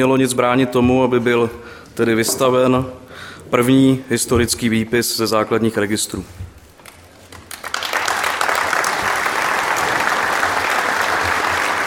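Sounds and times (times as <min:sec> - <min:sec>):
speech: 0:00.0 - 0:06.5
room full of people applauding: 0:07.3 - 0:11.8.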